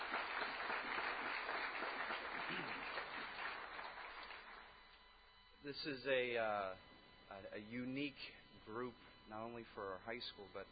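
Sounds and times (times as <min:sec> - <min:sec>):
room full of people applauding: 0:00.0 - 0:04.7
speech: 0:05.7 - 0:10.7.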